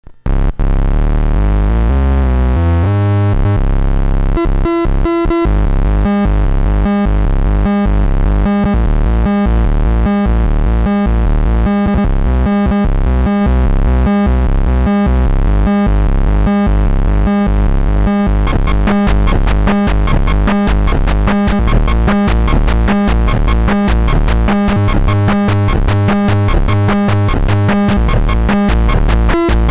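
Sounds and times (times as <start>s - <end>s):
Atari chiptune jam: 0.2s - 29.6s.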